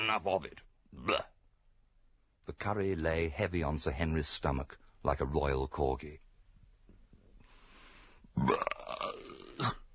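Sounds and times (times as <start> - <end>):
speech: 0.1 - 1.3, 2.4 - 6.2, 8.4 - 9.8
loud drawn-out belch: 1.0 - 1.4, 8.4 - 9.9.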